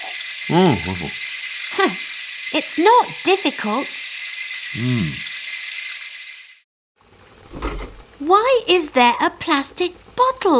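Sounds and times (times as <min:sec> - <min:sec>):
tap water running while brushing teeth: 0:00.0 - 0:10.2
person murmuring: 0:00.5 - 0:01.2, 0:04.8 - 0:05.2
speech: 0:00.5 - 0:01.2, 0:01.8 - 0:04.0, 0:04.7 - 0:05.3, 0:08.2 - 0:10.5.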